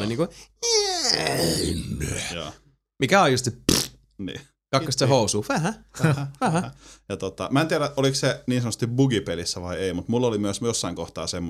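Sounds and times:
speech: 0.0s - 11.4s
vocal imitation of a baby cry turning into a wolf-like growl: 0.6s - 2.3s
laughter: 6.0s - 6.8s.

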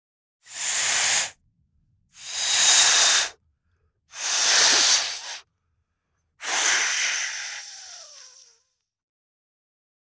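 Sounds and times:
balloon being blown up: 0.5s - 1.4s, 2.2s - 3.4s, 4.2s - 5.4s, 6.4s - 8.6s.

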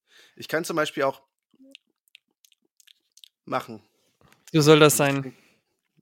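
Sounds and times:
speech: 0.4s - 1.3s, 3.5s - 3.9s, 4.5s - 5.4s
wet lip smacking and chewing against a microphone: 1.5s - 3.5s.

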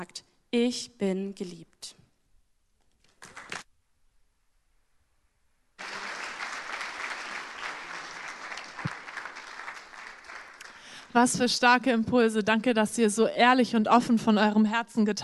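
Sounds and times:
speech: 0.0s - 2.0s, 11.1s - 15.2s
audience applauding loudly: 5.8s - 11.1s.

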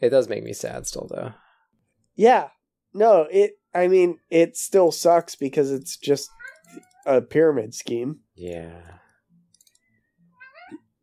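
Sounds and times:
speech: 0.0s - 1.4s, 2.2s - 9.0s
cat meowing loudly: 6.3s - 7.1s, 10.0s - 11.0s
soft clicks: 9.4s - 10.0s.

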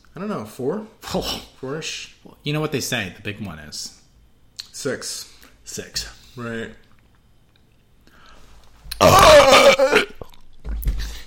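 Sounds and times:
speech: 0.2s - 4.0s, 4.8s - 6.8s, 9.0s - 10.1s
loud burp: 9.0s - 10.4s.

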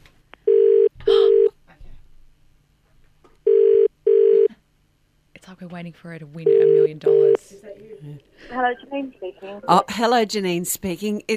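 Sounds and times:
telephone ringback tone in a double-ring pattern: 0.5s - 1.5s, 3.5s - 4.5s, 6.5s - 7.4s
speech: 5.6s - 11.3s.

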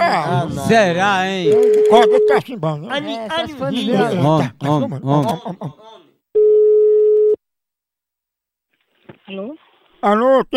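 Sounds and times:
laughter: 0.0s - 6.1s
speech: 0.2s - 6.0s, 9.3s - 10.5s
steady mid-pitched telephone tone while placing a call: 1.5s - 2.4s, 6.4s - 7.4s.

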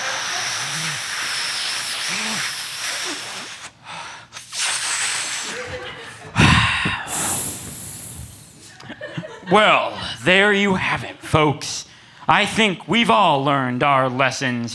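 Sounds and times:
laughter: 0.0s - 1.3s, 5.2s - 11.6s
sharper puff of breath: 0.0s - 8.8s
long drag on a cigarette: 0.0s - 8.9s
slow hissing exhale of cigarette smoke: 0.0s - 9.0s
speech: 9.5s - 14.7s.

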